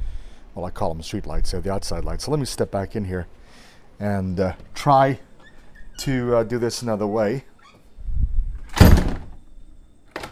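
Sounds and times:
speech: 0:00.6 - 0:05.3, 0:06.0 - 0:07.5
low rumble of movement: 0:08.0 - 0:09.4
apartment door slamming shut with a heavy thud and rattling crash: 0:08.7 - 0:09.4.

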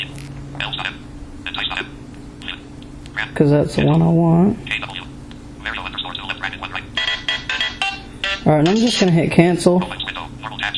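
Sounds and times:
low steady electrical hum: 0:00.0 - 0:10.7
speech: 0:03.4 - 0:04.9, 0:08.5 - 0:10.0
tinny video game theme ringtone from a phone: 0:07.0 - 0:09.2.

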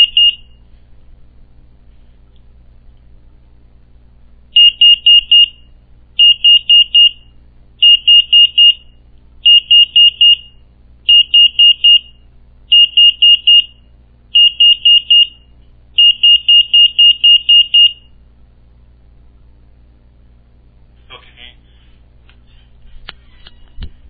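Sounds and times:
home security alarm arming countdown beeps during exit delay: 0:00.0 - 0:00.4, 0:04.6 - 0:05.6, 0:06.2 - 0:07.2, 0:07.8 - 0:08.8, 0:09.5 - 0:10.5, 0:11.1 - 0:12.1, 0:12.7 - 0:13.8, 0:14.4 - 0:15.4, 0:16.0 - 0:18.1
low steady hum: 0:00.0 - 0:24.0.

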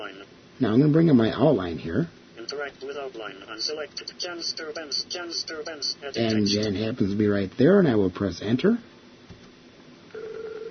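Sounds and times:
speech: 0:00.6 - 0:08.9
telephone ringback tone through a phone line: 0:10.1 - 0:10.6.

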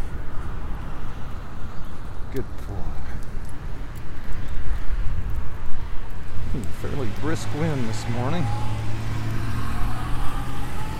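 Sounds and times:
road noise: 0:00.0 - 0:10.9
speech: 0:02.3 - 0:02.8, 0:07.2 - 0:08.7
pickup truck passing: 0:06.2 - 0:10.9.

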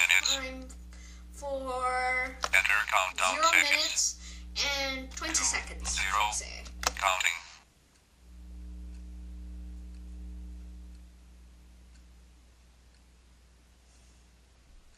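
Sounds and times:
loud low buzzing tone: 0:00.0 - 0:03.5, 0:04.1 - 0:07.0, 0:08.1 - 0:13.0
clock ticking: 0:00.0 - 0:07.2, 0:07.9 - 0:13.8
quiet hum: 0:00.0 - 0:14.9
speech: 0:01.4 - 0:07.4.

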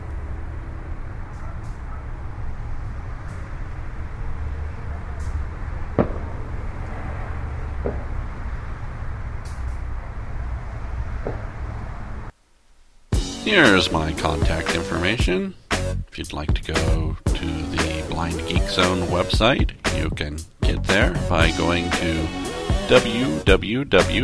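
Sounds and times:
constant low outdoor rumble: 0:00.0 - 0:22.4
crowd or voice murmur: 0:04.6 - 0:05.8
fireworks exploding outdoors: 0:04.6 - 0:09.2
speech: 0:13.5 - 0:15.6, 0:16.2 - 0:24.2.

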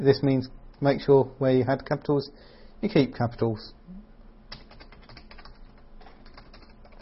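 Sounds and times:
speech: 0:00.0 - 0:04.0
typing on a computer keyboard at a setup prompt: 0:04.5 - 0:07.0.

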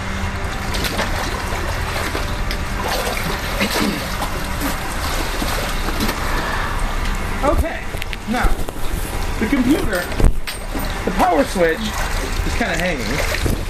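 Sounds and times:
water sloshing and churning in a swimming pool: 0:00.2 - 0:13.6
small splashes and bubbling in a swimming pool: 0:00.6 - 0:06.3, 0:11.7 - 0:13.6
speech: 0:11.4 - 0:13.6.

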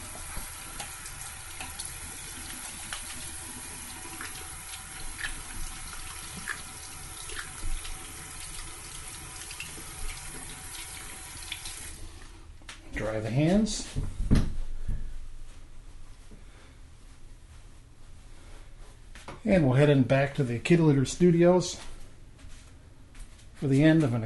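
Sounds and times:
water running from a sink tap: 0:00.0 - 0:12.3
speech: 0:13.1 - 0:14.1, 0:19.5 - 0:21.9, 0:23.6 - 0:24.2.

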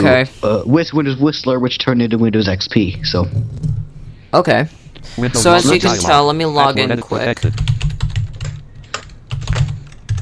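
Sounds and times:
speech: 0:00.0 - 0:07.7
rapid typing on a bassy computer keyboard: 0:07.4 - 0:10.1.

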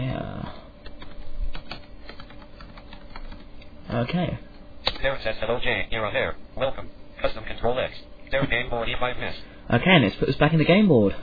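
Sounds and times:
rapid typing on a computer keyboard while entering a game move: 0:00.8 - 0:03.5
speech: 0:03.9 - 0:11.2.

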